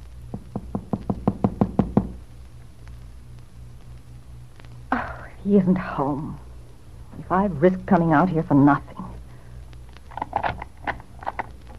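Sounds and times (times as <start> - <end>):
sharp knocks on the wooden front door of a house: 0.3 - 2.2
speech: 5.5 - 6.4, 7.2 - 9.0.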